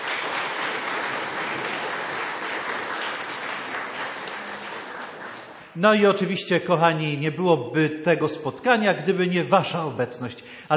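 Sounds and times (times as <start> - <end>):
crowd applauding warmly: 0.0 - 6.0
speech: 5.8 - 10.7.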